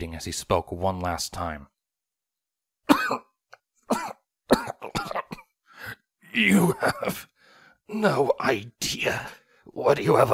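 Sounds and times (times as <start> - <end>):
speech: 0.0 - 1.7, 3.1 - 3.3, 3.9 - 7.3, 7.9 - 10.3
wounded man coughing up blood with wet rasping coughs: 2.9 - 5.6, 6.4 - 7.3.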